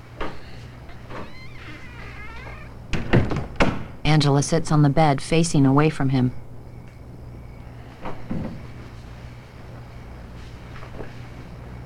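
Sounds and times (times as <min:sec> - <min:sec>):
door swinging with a faint creak: 0:00.2 - 0:03.9
bedroom door shutting with a solid thud: 0:01.1 - 0:04.0, 0:08.0 - 0:08.6
speech: 0:04.2 - 0:06.4.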